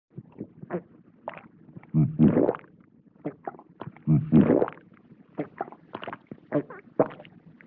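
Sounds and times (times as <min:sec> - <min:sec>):
vintage cartoon comedic human swallowing gulp: 0:00.3 - 0:02.7, 0:03.3 - 0:04.8, 0:05.4 - 0:07.3.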